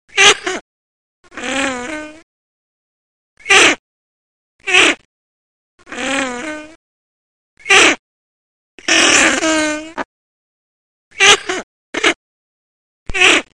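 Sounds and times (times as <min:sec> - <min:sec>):
common pochard: 0:03.4 - 0:03.8, 0:04.6 - 0:05.1, 0:07.6 - 0:08.0, 0:08.8 - 0:10.1, 0:11.2 - 0:12.2, 0:13.1 - 0:13.5.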